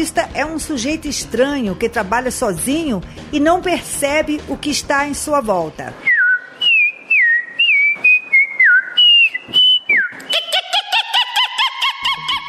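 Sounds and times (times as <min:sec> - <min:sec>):
speech: 0:00.0 - 0:06.1
female researcher whistling sliding birdlike notes: 0:06.0 - 0:10.4
laughter: 0:10.3 - 0:12.4.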